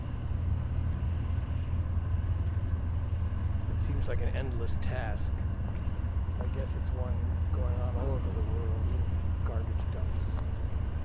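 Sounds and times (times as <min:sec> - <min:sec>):
deep engine rumble of crane moving scrap cars onto barge: 0:00.0 - 0:11.0
speech: 0:03.9 - 0:05.5, 0:06.4 - 0:10.6.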